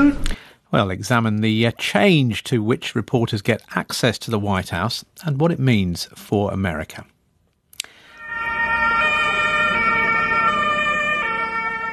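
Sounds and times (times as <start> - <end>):
speech: 0.0 - 7.1
emergency vehicle siren in Mannheim Germany: 8.0 - 11.9.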